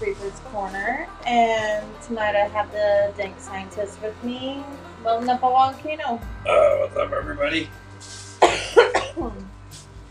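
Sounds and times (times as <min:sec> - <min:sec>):
speech: 0:00.0 - 0:08.1
harsh coughs: 0:08.4 - 0:09.3.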